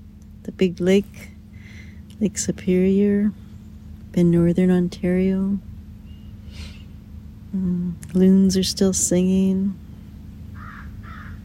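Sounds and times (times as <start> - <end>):
low outdoor rumble on the shore of Lake Superior: 0.0 - 11.4
speech: 0.4 - 1.3, 2.2 - 3.4, 4.2 - 5.7, 7.5 - 9.8
crow cawing on the shore of Lake Superior in Northern Ontario: 10.6 - 11.4.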